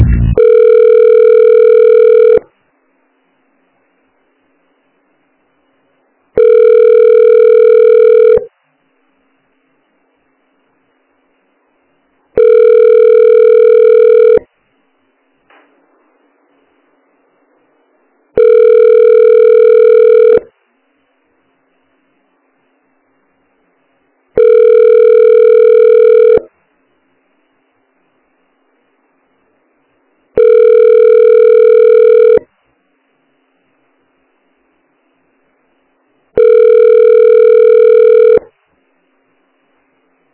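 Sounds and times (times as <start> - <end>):
telephone ringback tone during call transfer: 0.0 - 2.4, 6.4 - 8.5, 12.4 - 14.4, 18.4 - 20.4, 24.4 - 26.4, 30.4 - 32.4, 36.4 - 38.4.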